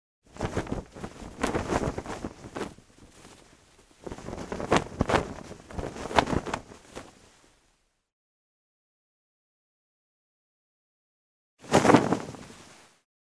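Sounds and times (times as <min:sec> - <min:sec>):
clothes being shaken out and folded: 0:00.3 - 0:07.5, 0:11.6 - 0:12.7.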